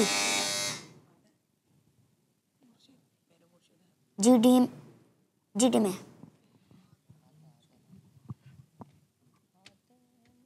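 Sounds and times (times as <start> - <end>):
speech: 0.0 - 0.2, 4.2 - 4.8, 5.6 - 6.1
quiz buzzer: 0.0 - 1.0.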